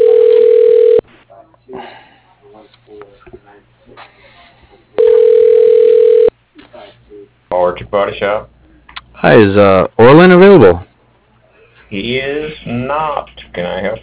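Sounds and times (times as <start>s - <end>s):
telephone dial tone: 0.0s - 1.0s, 5.0s - 6.3s
speech: 7.9s - 8.5s, 9.2s - 10.9s, 11.9s - 14.0s.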